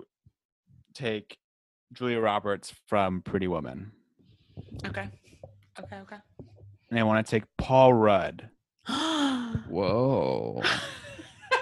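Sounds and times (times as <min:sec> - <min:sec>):
speech: 0:01.0 - 0:04.0, 0:04.6 - 0:05.2, 0:05.8 - 0:11.0
person gasping in surprise: 0:08.9 - 0:10.6.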